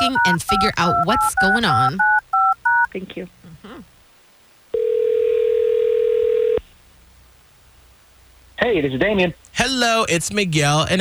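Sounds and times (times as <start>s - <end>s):
electronic ringback tone of a phone call ringing out: 0.0s - 2.9s, 4.8s - 6.6s
speech: 0.1s - 2.2s, 2.9s - 3.4s, 8.6s - 10.9s.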